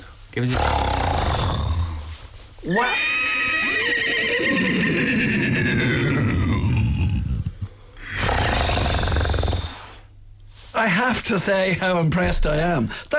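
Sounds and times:
speech: 0.4s - 0.9s, 2.6s - 3.2s, 10.8s - 13.1s
rough rumbling snorts imitating a horse: 0.4s - 2.3s, 5.9s - 10.1s
puppeteer imitating a horse whinny: 2.6s - 10.0s.

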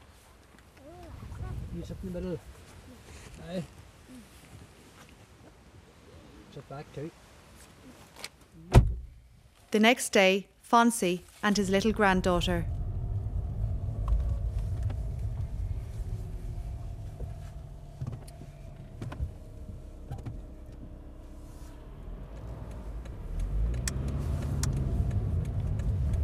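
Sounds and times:
speech: 1.8s - 2.6s, 3.4s - 4.3s, 6.6s - 7.2s, 9.7s - 12.8s
car engine rumbling while driving along country lanes: 11.5s - 26.2s.

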